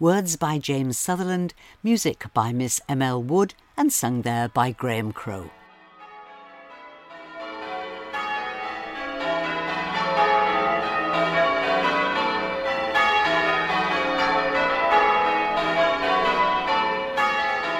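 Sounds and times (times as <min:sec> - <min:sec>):
speech: 0:00.0 - 0:05.6
church bells pealing: 0:05.6 - 0:17.7.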